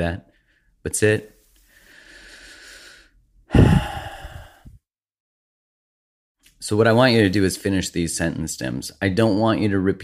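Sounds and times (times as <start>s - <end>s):
speech: 0.0s - 1.4s, 6.6s - 10.0s
person taking a deep breath: 1.6s - 4.8s.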